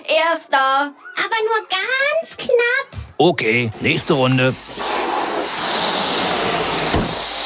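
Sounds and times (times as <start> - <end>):
speech: 0.1 - 4.8
air rushing out of a released balloon flying in a zigzag: 3.7 - 7.4.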